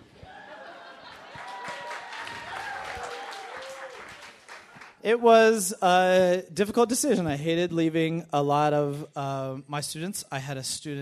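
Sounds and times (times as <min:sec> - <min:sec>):
laughter: 0:00.3 - 0:01.9
room full of people clapping steadily: 0:00.9 - 0:05.0
speech: 0:05.0 - 0:11.0.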